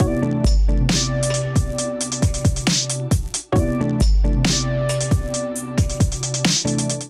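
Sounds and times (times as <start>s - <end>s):
drum kit groove at 135 bpm: 0.0s - 7.0s.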